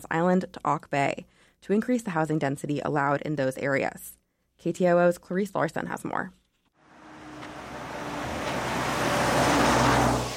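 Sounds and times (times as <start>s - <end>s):
speech: 0.0s - 6.4s
vehicle rushing past on a road: 6.8s - 10.3s
low engine rumble: 6.9s - 10.3s.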